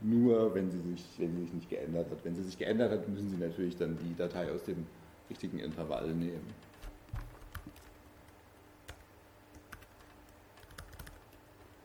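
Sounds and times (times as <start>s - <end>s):
speech: 0.0s - 6.8s
typing on a computer keyboard while a file is edited: 5.7s - 8.1s, 8.9s - 11.4s.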